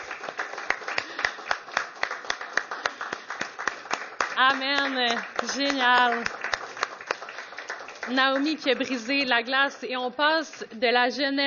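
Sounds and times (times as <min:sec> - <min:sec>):
crowd applauding with rhythmic clapping in unison: 0:00.0 - 0:09.6
speech: 0:04.4 - 0:06.4, 0:08.1 - 0:11.4.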